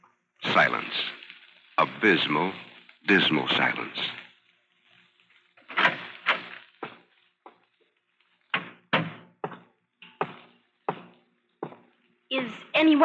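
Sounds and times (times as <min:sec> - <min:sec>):
speech: 0:00.6 - 0:01.2, 0:01.9 - 0:04.2, 0:12.8 - 0:13.0
hollow wooden thuds and clunks of a door being opened: 0:08.5 - 0:11.0.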